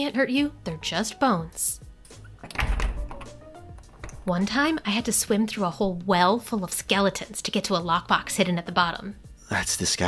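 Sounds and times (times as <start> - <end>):
speech: 0.0 - 1.8, 4.2 - 10.0
faint rattling: 2.2 - 4.9
door swinging shut with a dull thunk: 2.4 - 4.7.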